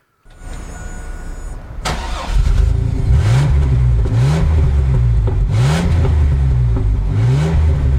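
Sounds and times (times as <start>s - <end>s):
four-cylinder car engine cranking and revving: 1.7s - 7.9s.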